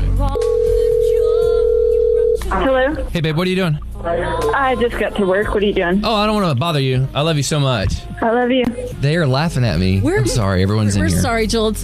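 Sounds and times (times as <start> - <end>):
low rumbling noise: 0.0 - 11.8
telephone ringing tone of a call being placed: 0.3 - 2.4
speech: 3.1 - 11.8.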